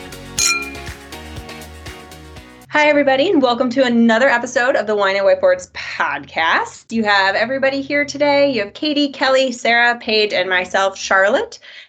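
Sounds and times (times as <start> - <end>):
soft music with a rhythmic low beat: 0.0 - 9.0
wine glasses clinking in a toast: 0.4 - 0.9
speech: 2.7 - 11.8.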